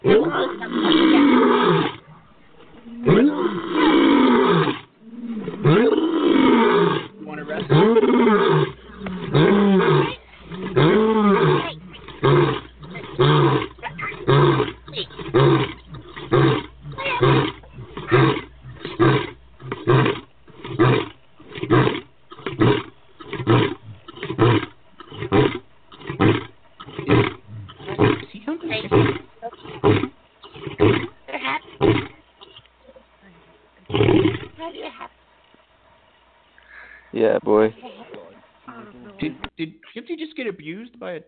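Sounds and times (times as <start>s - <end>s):
lion roaring in deep rumbling bursts: 0.0s - 2.2s, 2.8s - 32.2s, 33.9s - 34.6s.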